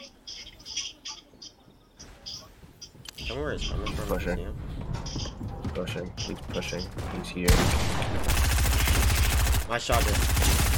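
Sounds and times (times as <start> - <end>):
speech: 3.3 - 4.7, 5.8 - 9.1, 9.7 - 10.7
rapid automatic gunfire in a video game: 7.5 - 10.7.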